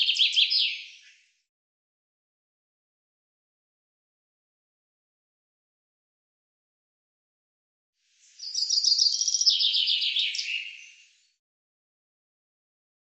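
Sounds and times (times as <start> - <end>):
common chaffinch song: 0.0 - 1.3, 8.1 - 11.4.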